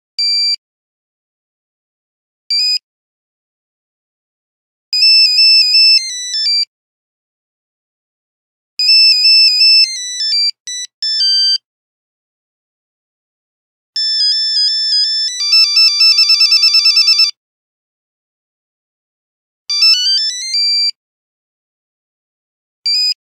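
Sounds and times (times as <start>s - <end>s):
Nokia 5110 mobile phone buzzer: 5.0s - 6.6s, 8.8s - 11.6s, 14.0s - 17.4s, 19.7s - 21.0s.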